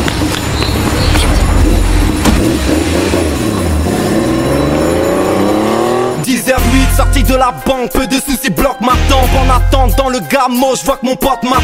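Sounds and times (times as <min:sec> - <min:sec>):
getaway car engine roaring and revving hard: 0:00.2 - 0:06.3
speech: 0:07.4 - 0:11.6.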